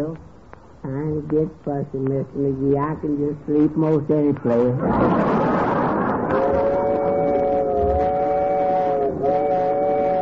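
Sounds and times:
speech: 0.0 - 5.6
train rumbling along rails: 4.9 - 10.1
long sustained horn-like train whistle: 6.3 - 10.1.

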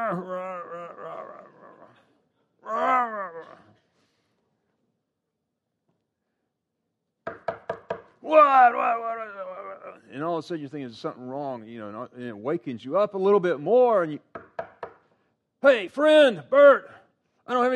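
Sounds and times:
speech: 0.1 - 0.7, 8.3 - 14.5, 15.6 - 17.7
knocking on a door, acted out: 7.2 - 8.1, 14.3 - 15.0.

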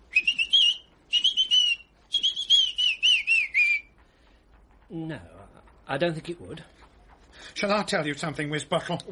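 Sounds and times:
man whistling an operatic melody: 0.1 - 3.9
speech: 4.9 - 6.8, 7.6 - 9.1.

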